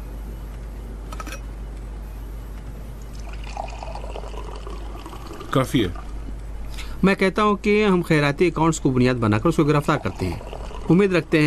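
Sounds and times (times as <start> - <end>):
low hum: 0.0 - 11.4
water pouring into a glass: 3.1 - 6.1, 9.8 - 11.1
speech: 5.5 - 6.0, 7.0 - 11.4.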